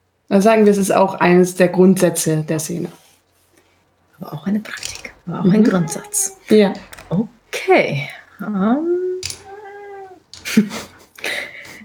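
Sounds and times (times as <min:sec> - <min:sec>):
speech: 0:00.3 - 0:03.0, 0:04.2 - 0:09.0, 0:10.6 - 0:10.9
cat meowing: 0:04.8 - 0:07.2, 0:09.2 - 0:10.3.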